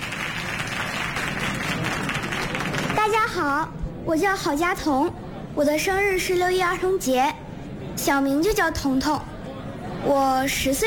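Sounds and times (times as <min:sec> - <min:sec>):
audience applauding to encourage a child volunteer: 0:00.0 - 0:03.1
speech: 0:03.4 - 0:07.4, 0:08.0 - 0:09.3, 0:10.0 - 0:10.8.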